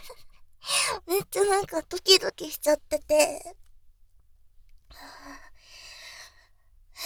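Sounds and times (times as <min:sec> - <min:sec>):
heavy excited breathing: 0:00.7 - 0:01.6
speech: 0:01.3 - 0:03.6.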